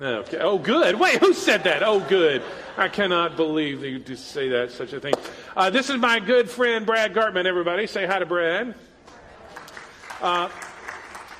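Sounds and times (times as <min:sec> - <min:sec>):
speech: 0:00.0 - 0:08.9, 0:10.2 - 0:10.7
laughter: 0:00.7 - 0:03.9
church audience applauding: 0:09.4 - 0:11.3.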